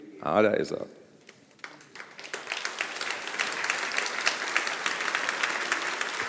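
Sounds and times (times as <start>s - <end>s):
audience applause at a prize award ceremony: 1.5s - 6.2s.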